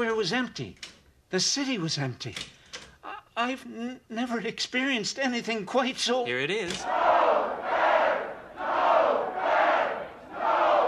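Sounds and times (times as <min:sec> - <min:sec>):
speech: 0:00.0 - 0:02.6, 0:03.4 - 0:07.2
large crowd shouting in rhythmic waves in a city square: 0:06.8 - 0:10.8.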